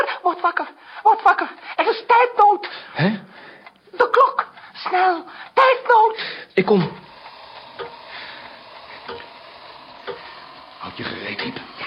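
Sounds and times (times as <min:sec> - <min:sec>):
speech: 0:00.2 - 0:03.2, 0:04.9 - 0:07.0
alarm clock beside a bed ticking: 0:03.6 - 0:11.8.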